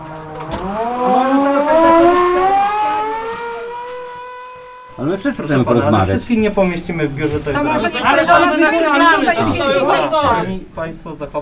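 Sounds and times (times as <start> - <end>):
siren wailing at a street protest: 0.0 - 5.0
noisy bustling background at a street protest: 0.0 - 11.4
speech: 5.2 - 11.4.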